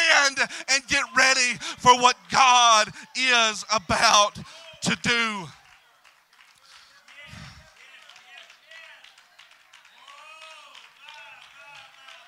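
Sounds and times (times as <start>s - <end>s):
voices calling out: 0.0s - 5.5s
speech: 0.2s - 5.6s
crowd clapping: 0.2s - 12.2s.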